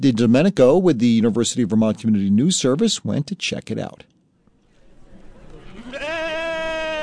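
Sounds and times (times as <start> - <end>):
speech: 0.0 - 4.2
low murmur and bustle at a fairground: 4.6 - 6.8
sheep bleating at a fairground: 5.6 - 7.0.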